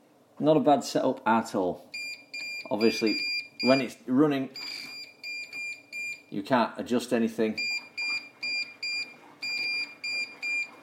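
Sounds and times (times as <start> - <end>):
speech: 0.4 - 1.9, 2.7 - 4.9, 6.3 - 7.7
appliance control panel beeping high pure electronic tones after a rejected button press: 2.0 - 3.9, 4.6 - 6.3, 7.6 - 10.8.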